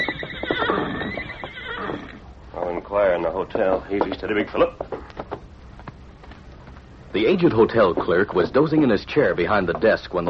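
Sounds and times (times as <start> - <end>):
horse hitched at a rack before a hotel neighing: 0.0 - 2.4
speech: 2.9 - 4.9, 7.1 - 10.2.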